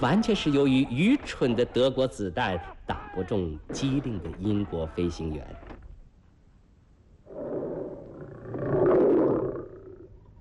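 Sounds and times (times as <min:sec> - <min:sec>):
speech: 0:00.0 - 0:05.6
tiger in a zoo roaring: 0:07.3 - 0:10.1.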